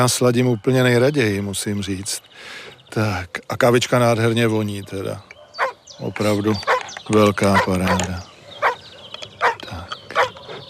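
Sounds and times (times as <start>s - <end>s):
speech: 0.0s - 5.3s, 6.0s - 8.3s
dog barking: 4.8s - 10.6s.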